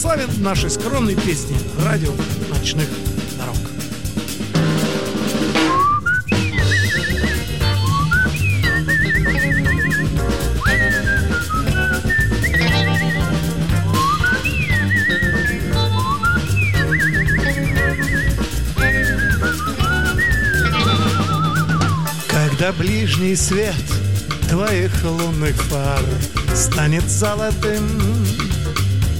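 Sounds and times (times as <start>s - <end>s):
speech: 0.0s - 3.8s, 22.7s - 28.5s
full band backing: 0.0s - 29.1s
man whistling a lively melody: 5.6s - 22.6s.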